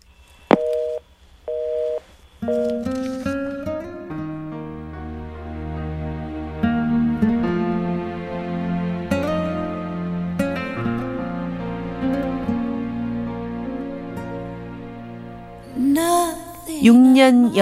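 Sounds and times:
telephone busy tone beeps: 0:00.0 - 0:02.8
phone hang-up click: 0:00.5 - 0:03.0
soft music: 0:02.4 - 0:17.6
speech: 0:16.8 - 0:17.6.

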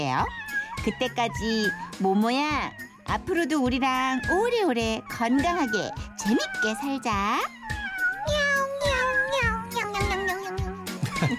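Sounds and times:
speech: 0:00.0 - 0:07.6
cat meowing: 0:00.0 - 0:11.3.

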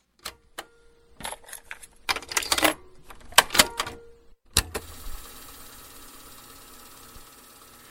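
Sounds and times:
cassette player clunking and clicking: 0:00.2 - 0:04.9.

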